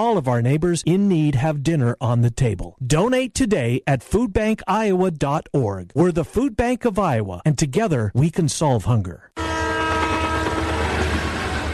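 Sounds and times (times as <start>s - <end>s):
speech: 0.0s - 9.5s
train horn blaring: 9.4s - 11.7s.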